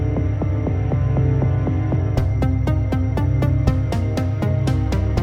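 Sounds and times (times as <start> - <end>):
fast drone: 0.1 - 5.2.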